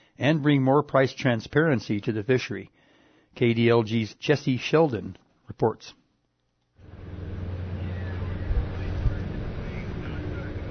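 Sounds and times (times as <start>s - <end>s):
speech: 0.2s - 2.8s, 3.4s - 6.0s
boat engine drone at the Naknek River entrance in Alaska: 6.8s - 10.6s
rushing wind: 6.9s - 10.6s.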